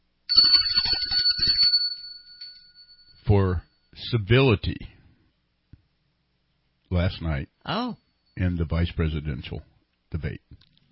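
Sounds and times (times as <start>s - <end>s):
small bell being rung: 0.3s - 4.0s
speech: 3.3s - 4.9s, 6.9s - 10.7s.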